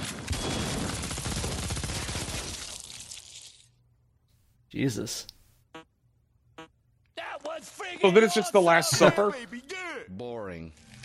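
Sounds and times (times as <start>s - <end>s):
rapid gunfire volley: 0.0s - 2.6s
speech: 4.7s - 5.4s, 8.0s - 10.9s.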